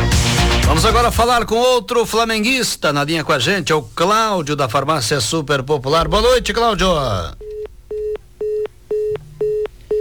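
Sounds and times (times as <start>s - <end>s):
speech: 0.7s - 7.5s
phone line beeps after a dropped call: 7.4s - 9.9s.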